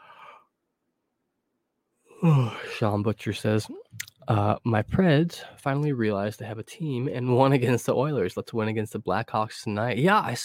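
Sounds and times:
breathy yawn: 2.1s - 2.8s
speech: 2.2s - 10.4s.

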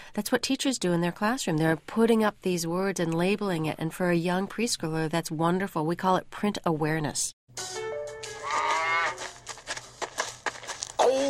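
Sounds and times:
speech: 0.2s - 8.6s
cow mooing: 8.4s - 9.2s
soft rustling: 8.7s - 11.0s.

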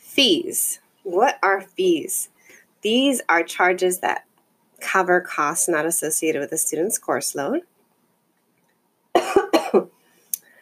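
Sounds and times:
speech: 0.2s - 7.7s, 9.2s - 10.0s
person coughing: 9.2s - 9.9s.

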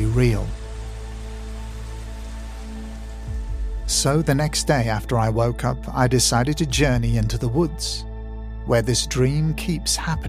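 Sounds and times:
steady rain: 0.0s - 4.8s
speech: 0.2s - 0.6s, 3.9s - 8.1s, 8.7s - 10.2s.

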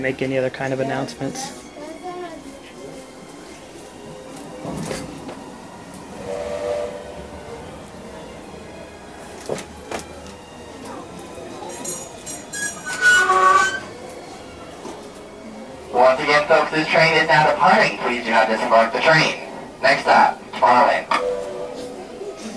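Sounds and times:
speech: 0.0s - 1.7s, 18.7s - 19.4s
indistinct voices murmuring: 0.0s - 22.5s
train pulling away with a steady rumbling roll: 0.0s - 22.5s
brief high squeal of a departing train: 12.3s - 14.2s.

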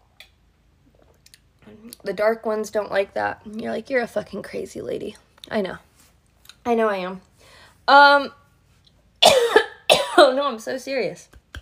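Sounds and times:
speech: 1.8s - 5.9s, 6.6s - 8.4s, 10.2s - 11.4s
person coughing in short loud bursts: 9.2s - 10.3s.

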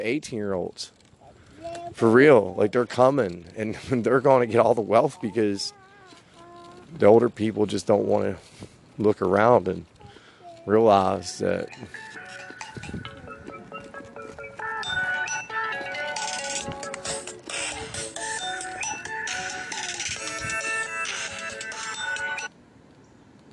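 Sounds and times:
speech: 0.0s - 1.0s, 1.9s - 5.8s, 6.9s - 9.9s, 10.6s - 12.1s
phone ringtone playing a bright electronic melody: 11.6s - 22.5s.

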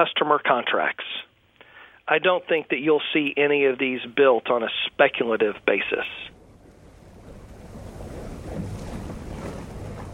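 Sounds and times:
speech: 0.0s - 1.3s, 2.1s - 6.4s
boat motoring across open water in Port Fourchon near the Gulf: 2.8s - 10.1s
gusts of wind buffeting the microphone: 6.3s - 10.1s
splashing boat wash: 6.3s - 10.1s.

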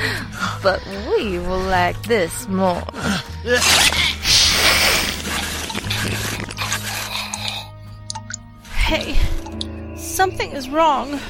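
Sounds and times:
speech: 0.0s - 4.0s, 8.9s - 9.4s, 10.2s - 11.2s
slurping: 3.5s - 8.4s
wet chewing: 3.7s - 8.4s.

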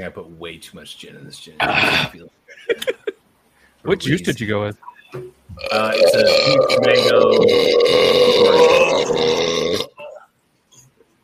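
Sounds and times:
speech: 0.0s - 3.0s, 3.8s - 9.9s
loud deep rumbling burp: 1.6s - 2.2s, 5.6s - 10.0s.

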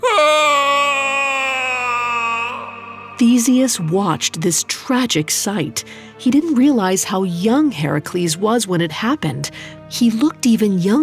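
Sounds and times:
young man's anguished wail of horror: 0.0s - 3.2s
speech: 3.2s - 11.0s.

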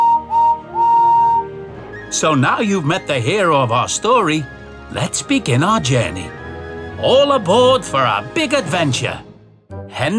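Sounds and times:
green tender steam engine whistle: 0.0s - 2.4s
speech: 2.2s - 6.4s, 7.0s - 9.2s, 10.0s - 10.1s.

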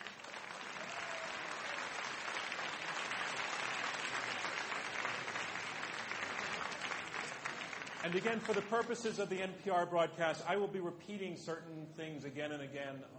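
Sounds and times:
audience applause as debaters enter stage: 0.0s - 9.2s
speech: 8.0s - 13.1s.

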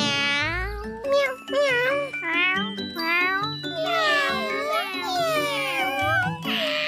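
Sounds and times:
child imitating a kitten meowing: 0.0s - 6.8s.

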